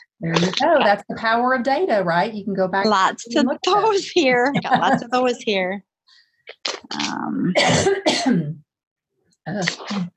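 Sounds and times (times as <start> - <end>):
speech: 0.0 - 8.6, 9.5 - 10.1
person with phlegm clearing throat: 6.9 - 8.6
person with phlegm in the throat coughing: 7.6 - 8.6.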